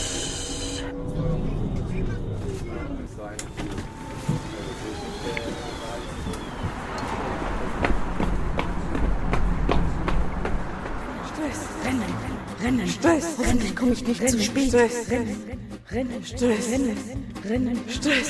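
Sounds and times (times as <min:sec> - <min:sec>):
busy ambient noise: 0:00.0 - 0:14.2
hurried running footsteps: 0:07.6 - 0:11.3
speech: 0:12.8 - 0:18.2.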